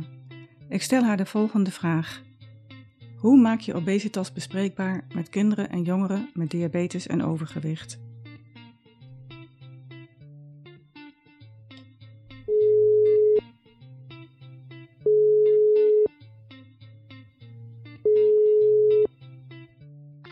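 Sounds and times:
quiet music: 0.0 - 10.0, 11.2 - 20.3
speech: 0.7 - 2.3, 3.2 - 8.0
ringback tone on an outgoing telephone call: 12.5 - 13.4, 15.1 - 16.1, 18.1 - 19.1.

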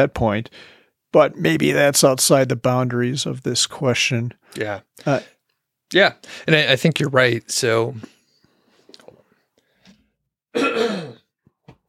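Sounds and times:
speech: 0.0 - 8.1, 10.6 - 11.0
harsh throat clearing: 10.6 - 11.3.

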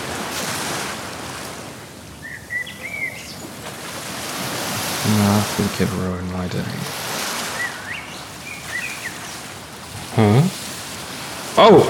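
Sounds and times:
beach surf washing: 0.0 - 11.8
bird chirping: 2.2 - 3.5, 7.5 - 9.5
speech: 5.1 - 7.0, 11.6 - 11.8.

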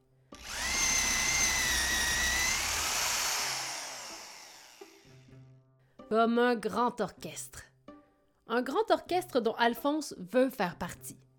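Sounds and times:
power drill boring into a tree in a forest: 0.4 - 5.3
speech: 6.1 - 7.7, 8.5 - 11.2.

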